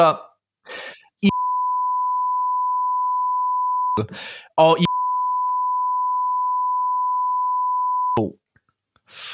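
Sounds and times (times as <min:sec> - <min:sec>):
speech: 0:00.0 - 0:01.4, 0:04.0 - 0:04.9
censor bleep tone: 0:01.3 - 0:04.0, 0:04.8 - 0:08.2.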